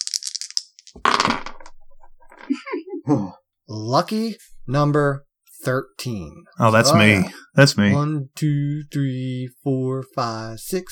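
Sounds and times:
dice shaken in a cup: 0.0s - 2.5s
speech: 2.5s - 10.8s
voice murmuring: 3.0s - 3.4s, 6.6s - 8.1s.

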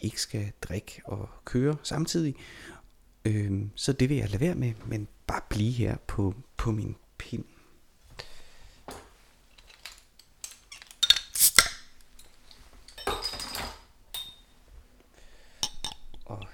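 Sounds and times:
speech: 0.0s - 7.5s
glassy clinks and taps: 12.9s - 14.5s.

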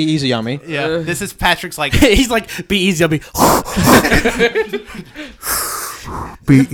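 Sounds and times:
speech: 0.0s - 6.7s
heavy breathing into a microphone: 2.4s - 6.5s
voiced chuckle-like sounds: 3.4s - 6.3s
loud rushing exhale blasting the microphone: 5.4s - 6.4s.

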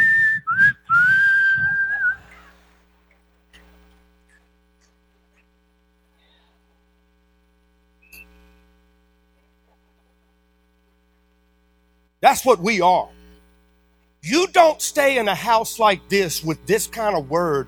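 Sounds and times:
person whistling a short wavering tune: 0.0s - 2.4s
low steady hum: 0.0s - 17.6s
speech: 12.2s - 13.2s, 14.2s - 17.6s.

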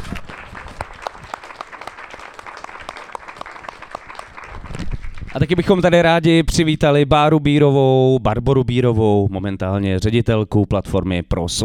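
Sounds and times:
audience applause for a guest being introduced: 0.0s - 5.6s
speech: 5.3s - 11.6s.

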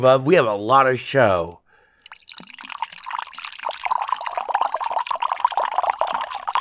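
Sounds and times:
speech: 0.0s - 1.6s
whiskey pouring into a glass: 2.0s - 6.5s.

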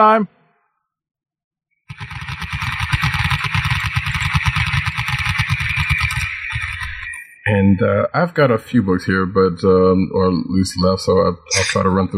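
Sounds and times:
speech: 0.0s - 0.4s, 7.4s - 12.1s
motorcycle engine revving up: 1.9s - 7.3s.

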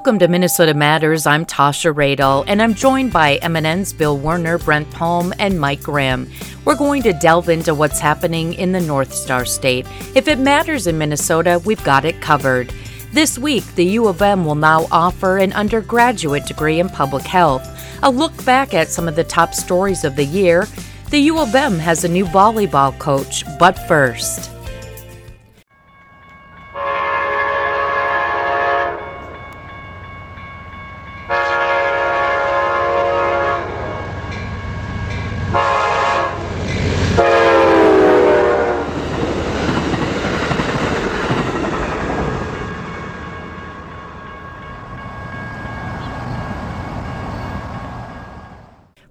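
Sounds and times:
speech: 0.0s - 24.6s
train rumbling past: 1.5s - 49.1s
train horn blasts: 26.8s - 29.4s, 31.3s - 39.0s.

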